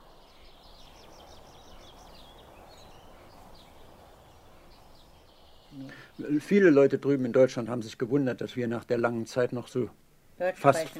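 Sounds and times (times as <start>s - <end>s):
small birds chirping outdoors: 0.0s - 9.8s
steady outdoor hiss and rumble: 0.0s - 10.9s
speech: 5.9s - 10.9s.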